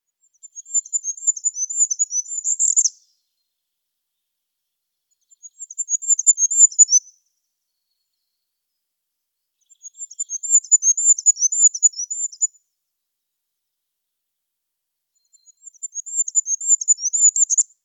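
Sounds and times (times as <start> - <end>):
goldcrest Regulus regulus: 0.2 - 3.1, 5.1 - 7.1, 9.6 - 12.5, 15.2 - 17.6.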